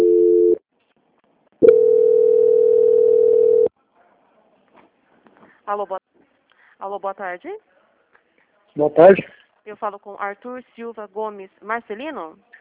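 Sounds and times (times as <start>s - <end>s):
telephone tones during a call transfer: 1.6s - 3.7s
speech: 5.7s - 6.1s, 6.8s - 7.8s, 8.8s - 12.5s.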